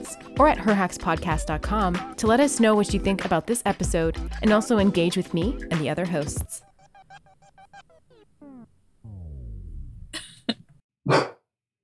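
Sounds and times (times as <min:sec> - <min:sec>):
speech: 0:00.1 - 0:06.7, 0:11.1 - 0:11.3
female dog whining: 0:06.6 - 0:10.6.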